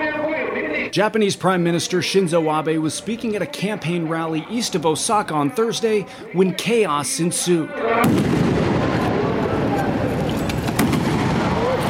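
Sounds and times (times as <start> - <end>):
outdoor crowd noise and chatter: 0.0 - 11.8
speech: 0.8 - 8.4
gunshots from a handmade gun: 8.0 - 11.8.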